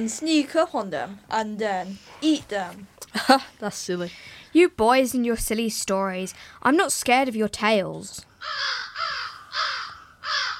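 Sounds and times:
speech: 0.0 - 8.8
birds calling with harsh raspy crow-like caws as they fly away: 8.4 - 10.5.

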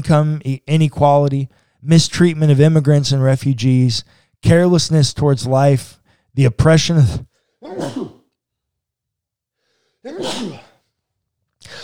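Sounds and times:
speech: 0.0 - 8.2, 10.0 - 10.6
short quiet inhale: 1.5 - 1.8, 4.1 - 4.4, 6.0 - 6.4, 9.6 - 10.0, 11.6 - 11.8
loud sneeze: 7.6 - 8.3, 10.0 - 10.8.

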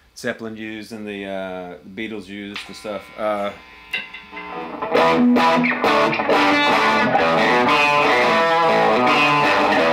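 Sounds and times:
speech: 0.2 - 8.0
electric guitar strummed chords through a solid-state distortion pedal: 2.6 - 9.9.

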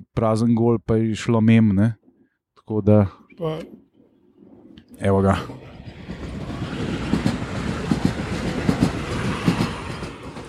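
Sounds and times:
speech: 0.2 - 2.0, 2.7 - 3.8, 5.0 - 5.6
train rolling past on rails: 4.3 - 10.4
train wheels clacking over track joints: 5.7 - 10.4.

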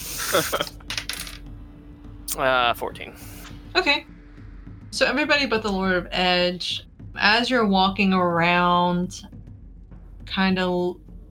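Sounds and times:
speech: 0.3 - 0.8, 2.4 - 4.1, 4.9 - 9.4, 10.3 - 11.0
dice tumbling across a hard tabletop: 0.6 - 1.4.

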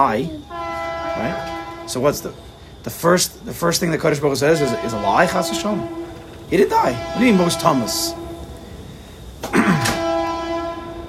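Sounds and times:
speech: 0.0 - 0.6, 1.2 - 8.2
passing train horn blast: 0.5 - 2.5, 4.5 - 11.0.

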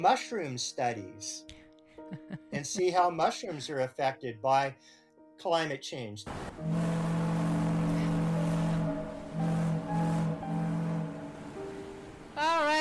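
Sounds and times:
speech: 0.0 - 6.9
laughter: 2.1 - 2.6
deep foghorn blasts near the coast: 6.3 - 12.4.

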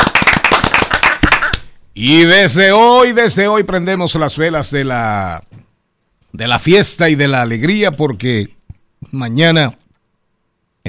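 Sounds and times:
small group clapping hands sharply: 0.0 - 1.7
speech: 2.0 - 5.6, 6.4 - 9.8.

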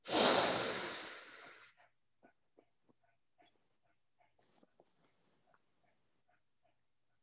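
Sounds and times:
person breathing during a guided breathing exercise: 0.0 - 1.9.

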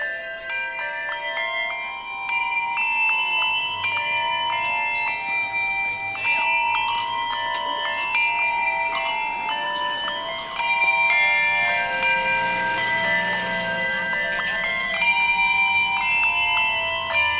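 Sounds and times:
handbell choir ringing a Christmas carol: 0.0 - 17.3.

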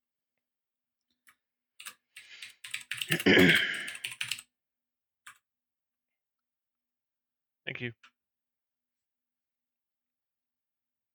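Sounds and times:
typing on a computer keyboard: 1.8 - 4.4
speech: 3.1 - 3.8, 7.8 - 8.2.

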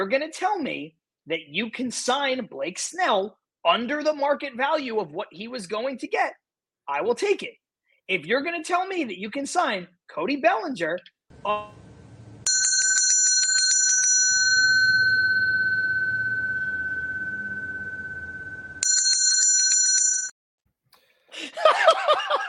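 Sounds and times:
speech: 0.0 - 11.8
homemade bicycle-style bell ringing: 12.5 - 20.3
laughter: 21.3 - 22.4.

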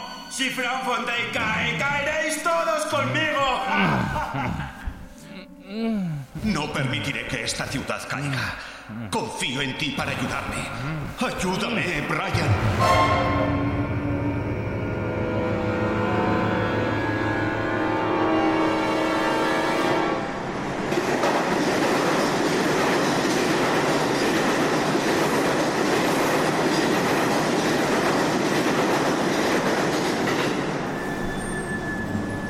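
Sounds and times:
speech: 0.4 - 4.7, 5.7 - 13.7
laughter: 3.5 - 5.6
subway train running in a video game on a metro line: 10.0 - 32.4
tonal hum: 12.6 - 18.5
subway train wheels squealing: 30.8 - 32.4.

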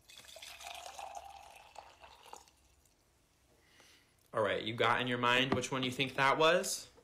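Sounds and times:
liquid pouring: 0.0 - 3.1
speech: 4.4 - 6.9.

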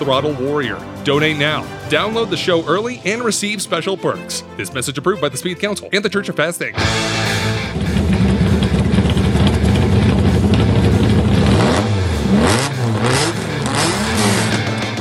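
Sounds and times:
speech: 0.0 - 7.2
TVR Cerbera sports car engine revving: 6.9 - 15.0.

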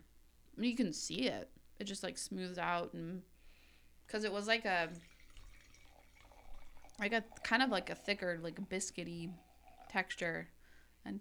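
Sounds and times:
speech: 0.6 - 3.3, 4.1 - 5.1, 7.0 - 11.1
wine pouring into a glass: 4.1 - 10.6.

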